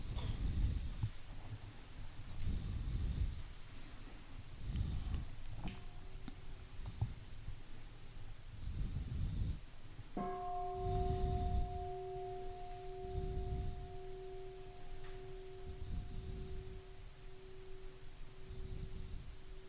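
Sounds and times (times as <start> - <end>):
soft rhythmic low rumbling noise: 0.0 - 19.6
single bell ringing: 10.2 - 18.9.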